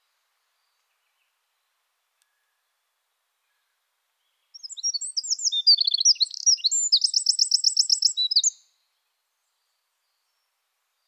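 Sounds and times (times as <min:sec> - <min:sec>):
Eurasian wren Troglodytes troglodytes singing: 0:04.5 - 0:08.6.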